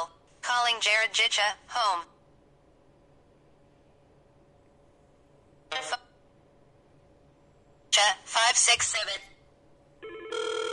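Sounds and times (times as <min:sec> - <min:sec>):
speech: 0:00.5 - 0:02.1, 0:05.7 - 0:06.0, 0:08.0 - 0:09.3
several telephones ringing with electronic ringtones: 0:10.0 - 0:10.7.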